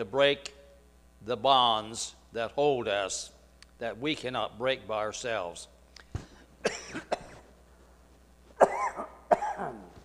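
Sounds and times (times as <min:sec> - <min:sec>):
speech: 0:00.0 - 0:00.6, 0:01.2 - 0:05.7
man coughing during a sermon: 0:06.2 - 0:07.5, 0:08.6 - 0:10.0.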